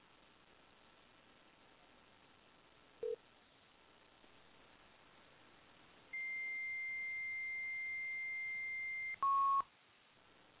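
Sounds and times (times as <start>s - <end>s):
steady high-pitched telephone beep during a call attempt: 6.2s - 9.7s.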